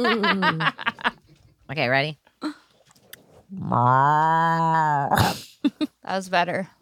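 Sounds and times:
speech: 0:00.0 - 0:00.9, 0:01.7 - 0:02.6, 0:03.5 - 0:06.7
person imitating a cow moo: 0:03.5 - 0:05.2.

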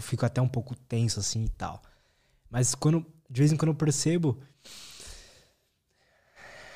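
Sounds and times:
speech: 0:00.0 - 0:04.9
deep noisy breath drawn in through the nose: 0:04.6 - 0:06.7.

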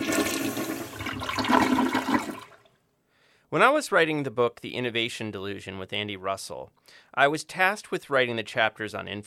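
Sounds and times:
toilet flushing: 0:00.0 - 0:02.7
speech: 0:03.5 - 0:09.2.

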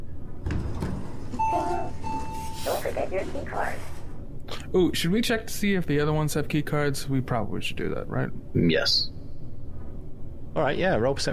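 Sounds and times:
elevator door sliding open: 0:00.4 - 0:04.1
speech: 0:02.6 - 0:03.9, 0:04.7 - 0:09.2, 0:10.6 - 0:11.3.

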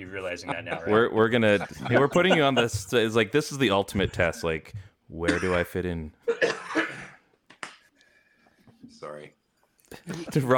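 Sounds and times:
laughter: 0:00.0 - 0:03.2, 0:10.0 - 0:10.5
speech: 0:00.0 - 0:06.2, 0:09.0 - 0:10.5
cough: 0:05.3 - 0:05.7, 0:06.3 - 0:07.3.

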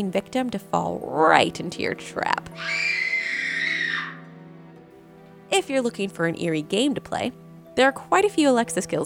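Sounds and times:
speech: 0:00.0 - 0:03.1, 0:05.6 - 0:09.0
shrill scream sound effect played by a smart speaker: 0:02.5 - 0:04.3.

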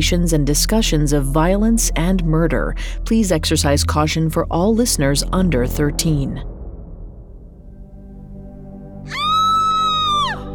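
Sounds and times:
speech: 0:00.0 - 0:06.5
shrill sustained scream: 0:09.1 - 0:10.5.

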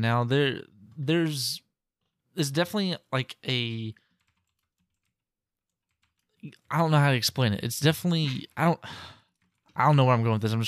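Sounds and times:
speech: 0:00.0 - 0:01.6, 0:02.4 - 0:04.0, 0:06.4 - 0:09.2, 0:09.8 - 0:10.6
typing on a computer keyboard: 0:04.0 - 0:07.0, 0:09.2 - 0:10.1.

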